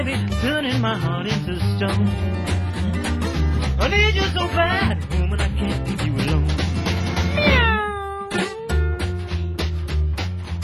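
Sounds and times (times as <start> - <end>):
speech: 0.0 - 2.6, 3.8 - 6.4
thumping beat with bass notes: 0.0 - 7.8, 8.4 - 10.6
cat meowing: 7.4 - 8.4.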